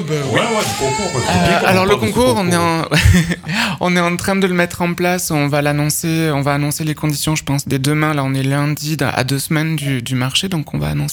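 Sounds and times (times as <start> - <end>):
speech: 0.0 - 11.1
baby crying out with a wavering bleating wail: 0.3 - 2.5
laughter: 0.3 - 3.6.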